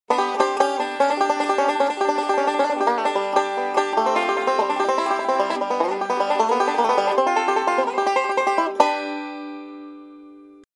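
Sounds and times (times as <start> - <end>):
5-string banjo: 0.1 - 10.7.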